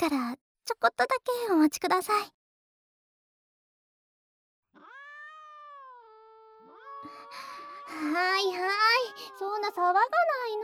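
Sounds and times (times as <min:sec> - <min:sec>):
speech: 0:00.0 - 0:02.4, 0:07.3 - 0:10.6
cats meowing begging for treats: 0:04.8 - 0:09.7.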